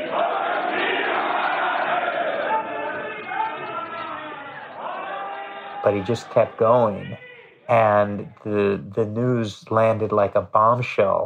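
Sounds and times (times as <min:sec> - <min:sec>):
opposition politicians in India's Parliament shouting, heckling, booing and screaming: 0:00.0 - 0:08.8
speech: 0:05.8 - 0:11.2.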